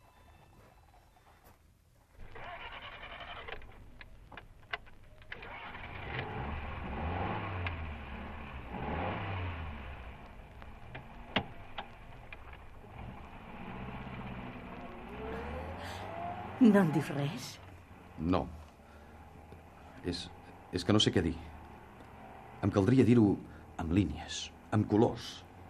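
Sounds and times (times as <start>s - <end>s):
sharp clicks and rattles: 2.2s - 6.2s, 10.5s - 12.9s
car engine starting, revving and pulling away: 2.2s - 25.6s
speech: 16.6s - 17.6s, 18.2s - 18.6s, 20.1s - 21.5s, 22.7s - 25.5s.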